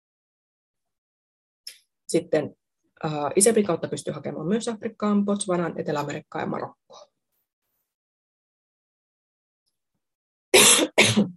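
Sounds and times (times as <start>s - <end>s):
speech: 2.1s - 7.1s
harsh coughs with throat clearing: 10.6s - 11.3s.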